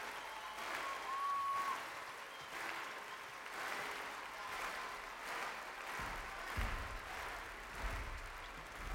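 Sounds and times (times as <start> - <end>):
audience applause: 0.0 - 8.9.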